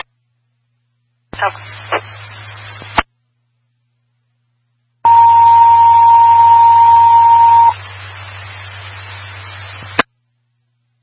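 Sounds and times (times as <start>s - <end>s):
radio hiss and low hum: 0.0s - 11.0s
speech: 1.4s - 2.0s
fire dispatch pager radio alert tone: 5.1s - 7.8s.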